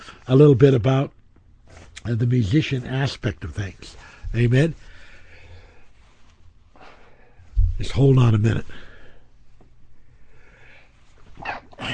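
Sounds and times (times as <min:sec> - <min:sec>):
quiet hiss: 0:00.0 - 0:11.9
speech: 0:00.3 - 0:01.2, 0:02.0 - 0:04.9, 0:07.8 - 0:08.8
person sneezing: 0:11.4 - 0:11.9.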